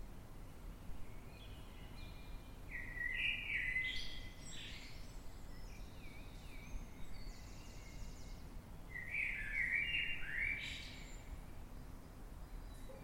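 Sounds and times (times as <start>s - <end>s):
Eurasian blackbird singing at night in London: 1.2s - 11.3s.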